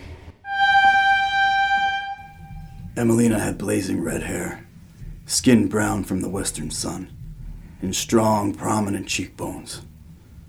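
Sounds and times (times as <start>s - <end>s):
train rumbling on railroad tracks: 0.0s - 10.4s
train whistle blast: 0.5s - 3.1s
speech: 3.0s - 4.7s, 5.3s - 7.2s, 7.8s - 9.9s.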